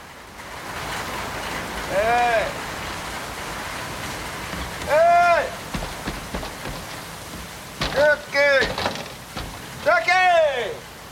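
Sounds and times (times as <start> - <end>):
heavy rain pouring down: 0.0 - 11.0.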